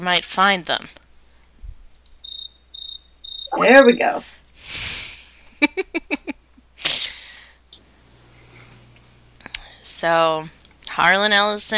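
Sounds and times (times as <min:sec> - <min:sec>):
speech: 0:00.0 - 0:01.0, 0:03.5 - 0:05.0, 0:10.0 - 0:11.7
crickets chirping: 0:02.2 - 0:04.0, 0:08.0 - 0:08.9.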